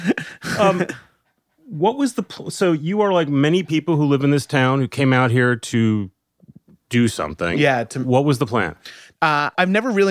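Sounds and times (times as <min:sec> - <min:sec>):
speech: 0:00.3 - 0:01.1, 0:01.7 - 0:06.2, 0:06.9 - 0:10.0
excited male dog panting: 0:01.1 - 0:04.1.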